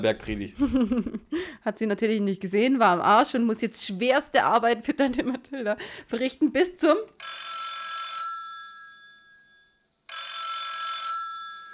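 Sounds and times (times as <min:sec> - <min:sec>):
speech: 0:00.0 - 0:07.4
laughter: 0:00.6 - 0:01.4
telephone bell ringing: 0:07.2 - 0:11.7.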